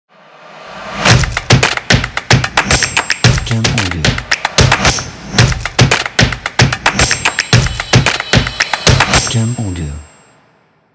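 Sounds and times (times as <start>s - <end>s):
energetic drums logo: 1.1s - 9.6s.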